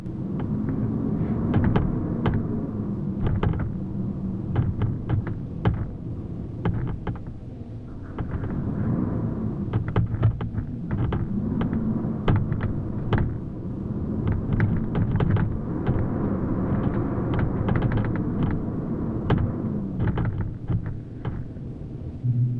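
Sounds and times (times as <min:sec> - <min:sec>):
winter wind howling: 0:00.0 - 0:22.5.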